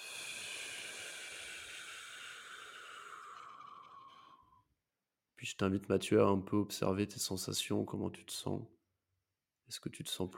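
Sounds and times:
deep exhale during a breathing exercise: 0.0s - 4.6s
speech: 5.4s - 8.8s, 9.7s - 10.3s.

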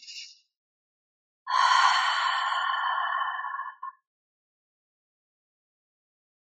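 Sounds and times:
short breathy nasal inhale: 1.5s - 3.9s
long steady voiced aah exhale: 1.5s - 4.0s.

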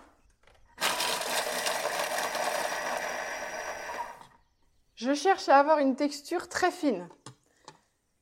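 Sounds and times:
blender grinding speculoos biscuits into fine powder: 0.8s - 4.3s
speech: 5.0s - 7.2s.

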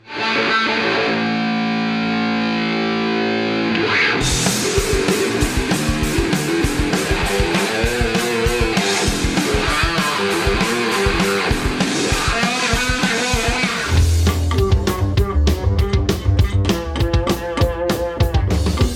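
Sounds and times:
heavily distorted electric bass solo with wah-wah effect: 0.2s - 18.9s
steady drum beat: 4.2s - 18.9s.

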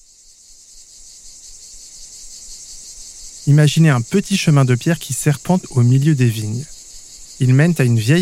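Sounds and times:
cicadas buzzing in the garrigue: 0.0s - 8.2s
speech: 3.5s - 6.8s, 7.4s - 8.2s.

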